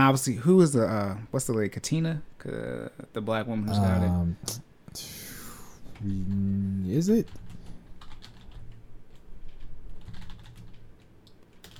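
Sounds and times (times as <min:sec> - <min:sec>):
speech: 0:00.0 - 0:05.2, 0:06.0 - 0:07.4
low hum: 0:00.0 - 0:11.7
typing on a computer keyboard: 0:07.2 - 0:11.7.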